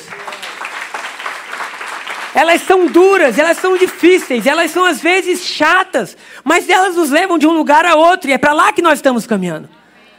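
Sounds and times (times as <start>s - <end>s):
audience applauding: 0.0s - 5.0s
speech: 2.3s - 9.8s.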